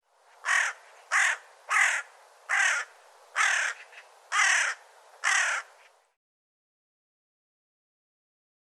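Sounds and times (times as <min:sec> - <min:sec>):
bird giving harsh hoarse caws: 0:00.4 - 0:05.9.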